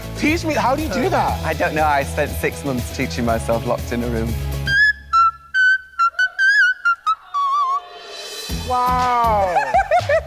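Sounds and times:
speech: 0:00.2 - 0:04.5, 0:08.7 - 0:10.2
voice singing whistle-register notes: 0:06.1 - 0:09.4
laughter: 0:09.1 - 0:10.2.

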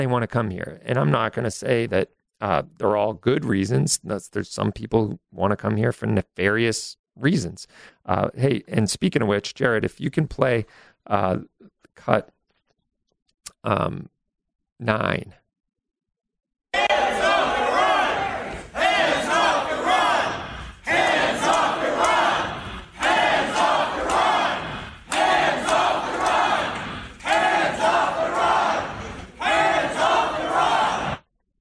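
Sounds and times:
speech: 0:00.0 - 0:12.4, 0:13.6 - 0:14.2, 0:14.8 - 0:15.4
large rally crowd chanting slogans in unison: 0:16.8 - 0:31.2.

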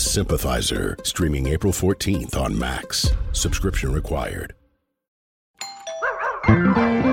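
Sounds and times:
speech: 0:00.2 - 0:04.6
doorbell chiming ding-dong tones: 0:05.6 - 0:07.0.

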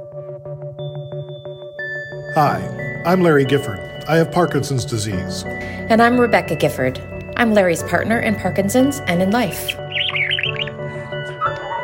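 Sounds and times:
speech: 0:02.4 - 0:09.8
pet bird chirping and warbling: 0:09.5 - 0:11.8.

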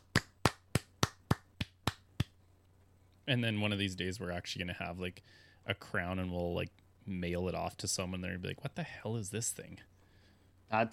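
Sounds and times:
single person clapping: 0:00.0 - 0:02.4
faint steady hum: 0:00.0 - 0:10.9
speech: 0:03.3 - 0:09.9, 0:10.7 - 0:10.9.

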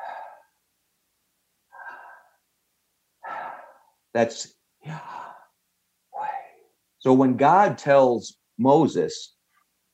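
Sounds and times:
person breathing in and out: 0:00.0 - 0:00.6, 0:01.7 - 0:02.5, 0:03.2 - 0:04.0, 0:04.8 - 0:05.6
speech: 0:04.2 - 0:05.2, 0:07.0 - 0:09.4.

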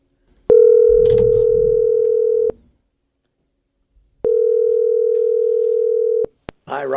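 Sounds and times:
telephone dial tone while placing a call: 0:00.5 - 0:02.5, 0:04.3 - 0:06.3
speech: 0:06.8 - 0:06.9.

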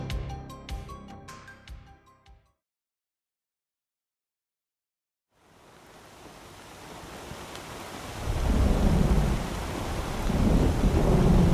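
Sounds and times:
rain-soaked hiss of a thunderstorm: 0:05.4 - 0:11.5
deep rolling thunder in Chandler Oklahoma: 0:08.0 - 0:11.5.

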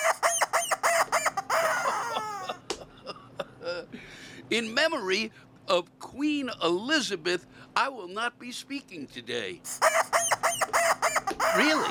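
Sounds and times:
rubber chicken toy squawking: 0:00.0 - 0:02.6, 0:09.7 - 0:11.8
speech: 0:04.5 - 0:10.0, 0:11.6 - 0:11.8
laughter: 0:11.5 - 0:11.8.

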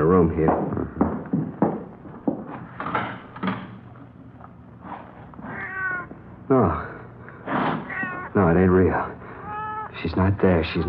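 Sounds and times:
speech: 0:00.3 - 0:01.0, 0:06.5 - 0:06.9, 0:10.0 - 0:10.8
sharp knocks and clatters: 0:00.5 - 0:03.8
cat meowing: 0:05.4 - 0:06.1, 0:07.8 - 0:08.4, 0:09.4 - 0:10.0, 0:10.6 - 0:10.8.

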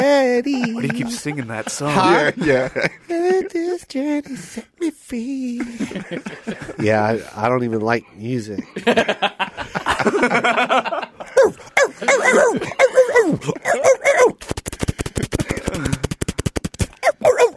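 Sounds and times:
person mimicking police dogs barking outside a car: 0:00.0 - 0:01.2, 0:11.4 - 0:17.5
laughter: 0:00.0 - 0:03.8, 0:05.5 - 0:07.2, 0:08.5 - 0:14.0
speech: 0:00.1 - 0:14.4.

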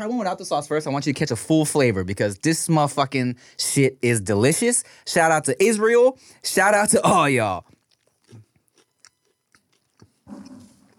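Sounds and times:
speech: 0:00.0 - 0:08.4
chewing a flaky baked savory burekas pastry: 0:07.1 - 0:10.9
crunchy bites of a savory burekas pastry: 0:07.1 - 0:10.9.

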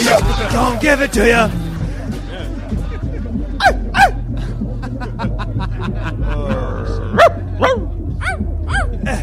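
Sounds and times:
laughter: 0:00.0 - 0:08.0
steady low hum: 0:00.0 - 0:09.2
speech: 0:00.1 - 0:01.6
person imitating puppies with high yelping barks: 0:07.1 - 0:09.0.

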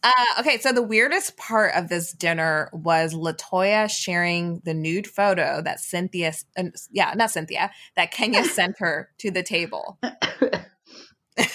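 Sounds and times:
speech: 0:00.0 - 0:11.5
person coughing: 0:08.4 - 0:08.6, 0:10.0 - 0:10.7
raspy throat clearing: 0:10.0 - 0:10.7.

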